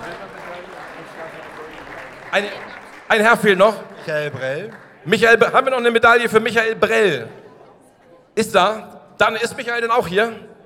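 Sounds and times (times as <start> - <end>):
audience applause: 0.0 - 5.4
speech: 2.3 - 7.4, 8.4 - 10.5.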